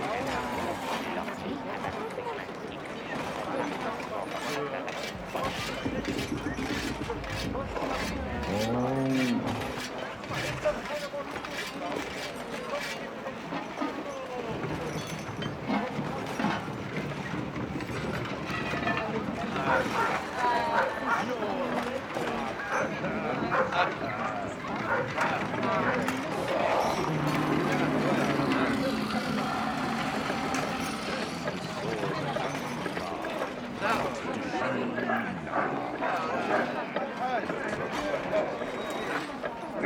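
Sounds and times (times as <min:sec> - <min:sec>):
town ambience: 0:00.0 - 0:39.8.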